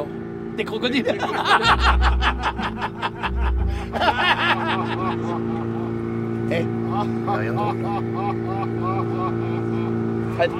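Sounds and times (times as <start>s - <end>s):
motorboat engine droning: 0.0s - 10.5s
speech: 0.6s - 5.7s, 6.5s - 8.4s, 10.4s - 10.5s
laughter: 1.0s - 5.9s, 6.9s - 10.0s.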